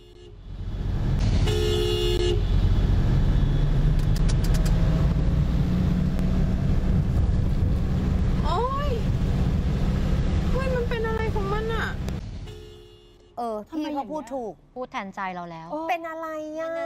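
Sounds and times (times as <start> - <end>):
pickup truck engine speeding along a flooded road: 0.6 - 12.4
pickup truck horn honking: 1.4 - 2.8, 12.4 - 13.4
speech: 14.0 - 16.8.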